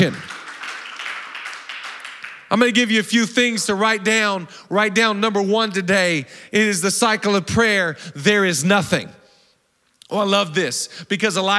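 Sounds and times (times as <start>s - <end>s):
speech: 0.0s - 0.3s, 2.5s - 9.2s, 10.1s - 11.5s
church audience clapping: 0.0s - 2.8s.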